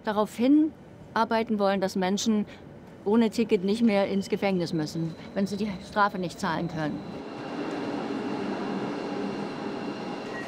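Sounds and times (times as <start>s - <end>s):
speech: 0.0s - 7.3s
regional train running: 5.0s - 10.4s.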